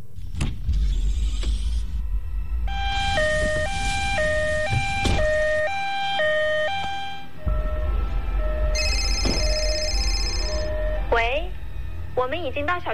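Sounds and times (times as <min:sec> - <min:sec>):
low engine rumble: 0:00.0 - 0:12.9
loud ambulance siren in hi-lo pattern: 0:02.2 - 0:12.1
speech: 0:12.4 - 0:12.9.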